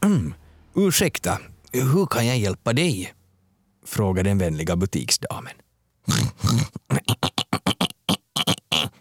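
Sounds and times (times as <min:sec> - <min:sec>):
speech: 0:00.0 - 0:03.2, 0:03.8 - 0:07.4
pig grunting in a shop: 0:06.1 - 0:08.9.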